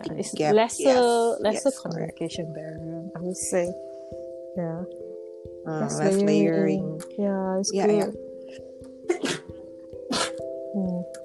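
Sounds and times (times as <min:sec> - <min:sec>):
speech: 0:00.0 - 0:03.9, 0:04.6 - 0:09.3
person murmuring: 0:05.8 - 0:08.2, 0:10.1 - 0:11.2
sneeze: 0:09.1 - 0:09.5, 0:10.1 - 0:10.4.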